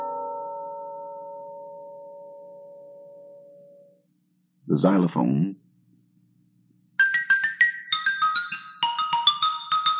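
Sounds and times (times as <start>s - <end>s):
speech: 4.8s - 5.6s
orchestral chimes striking bell-like notes at several pitches: 7.0s - 9.9s.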